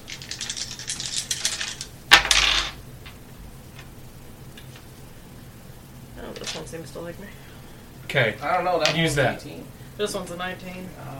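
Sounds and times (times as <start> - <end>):
several dice rolling across a hard table: 0.1 - 3.2, 8.8 - 9.2
speech: 6.5 - 7.5, 8.1 - 11.1.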